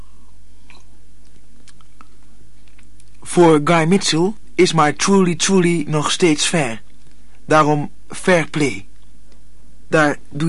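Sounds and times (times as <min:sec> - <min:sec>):
person sipping a drink: 0:00.0 - 0:02.9
low steady hum: 0:00.0 - 0:10.4
soft wet mouth clicks: 0:00.6 - 0:03.2
speech: 0:03.4 - 0:06.8, 0:07.5 - 0:08.9, 0:09.9 - 0:10.4.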